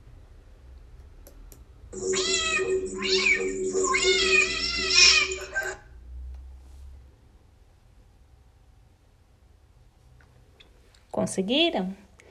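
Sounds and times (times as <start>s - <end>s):
cat meowing in a long wavering cry: 2.0s - 5.8s
speech: 11.2s - 12.0s.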